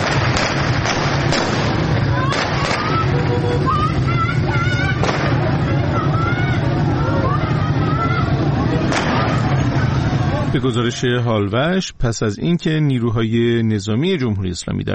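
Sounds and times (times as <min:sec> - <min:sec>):
sharp irregular gunshots during clashes with police in Iran: 0:00.0 - 0:03.1, 0:05.0 - 0:05.6, 0:08.8 - 0:09.8
crowd of protesters shouting and clamoring: 0:00.0 - 0:11.3
speech: 0:10.6 - 0:14.9.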